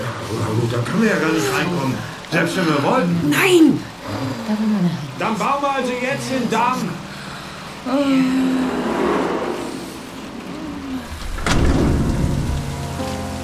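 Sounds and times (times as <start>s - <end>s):
heavy rain: 0.0s - 13.4s
speech: 0.5s - 7.1s, 7.8s - 9.2s
faint tonal sounds: 7.2s - 12.6s
thunder crack and rumble: 8.5s - 12.9s.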